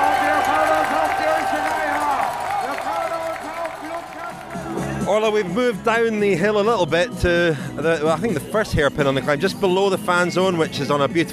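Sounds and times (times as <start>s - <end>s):
crowd cheering and shouting for a passing cycling peloton at a race: 0.0s - 5.7s
speech: 5.2s - 11.3s.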